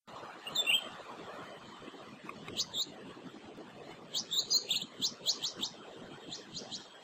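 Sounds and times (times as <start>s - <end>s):
female blue-winged leafbird calls: 0.4s - 0.9s, 2.4s - 2.9s, 4.1s - 7.0s.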